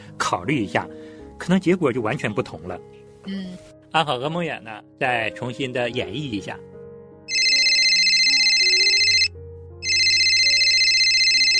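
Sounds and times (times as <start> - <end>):
speech: 0.3 - 6.7
telephone ringing with electronic trill: 7.3 - 11.5.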